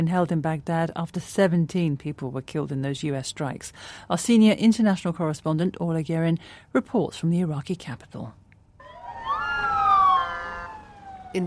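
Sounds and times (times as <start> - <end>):
speech: 0.0 - 8.4
ambulance siren in a funeral convoy in Baghdad: 8.8 - 11.4.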